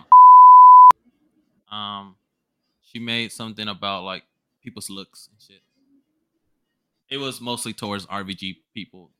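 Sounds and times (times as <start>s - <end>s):
censor bleep tone over speech: 0.0s - 0.9s
speech: 2.9s - 5.7s, 7.1s - 9.1s.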